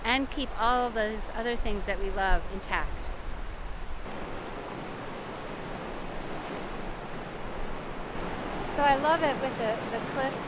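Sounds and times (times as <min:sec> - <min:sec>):
speech: 0:00.2 - 0:03.2, 0:08.8 - 0:10.4
river roaring through a rocky sluice pool beside cliffs: 0:04.0 - 0:10.4.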